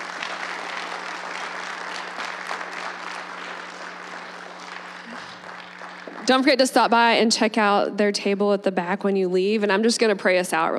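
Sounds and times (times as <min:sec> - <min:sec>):
audience applause at a gathering: 0:00.0 - 0:06.6
speech: 0:06.3 - 0:10.7.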